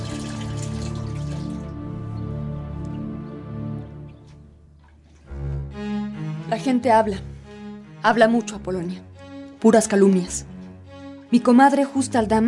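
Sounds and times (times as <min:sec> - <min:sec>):
hot water poured from a bucket into a bathtub: 0:00.0 - 0:01.8
speech: 0:06.5 - 0:07.3, 0:08.0 - 0:10.5, 0:11.3 - 0:12.4.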